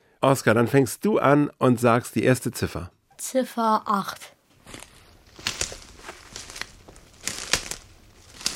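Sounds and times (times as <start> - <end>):
speech: 0.2 - 4.4
footsteps on dry leaves and twigs in a forest: 4.6 - 8.5.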